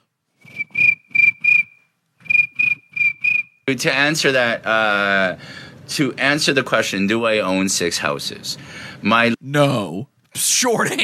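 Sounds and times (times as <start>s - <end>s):
crickets chirping: 0.5s - 3.6s
speech: 3.7s - 11.0s.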